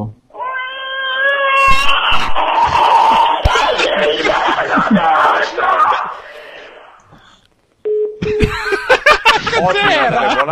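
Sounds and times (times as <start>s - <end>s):
caller screaming loudly over the phone: 1.3s - 6.2s
laughter: 1.9s - 6.8s, 8.2s - 10.5s.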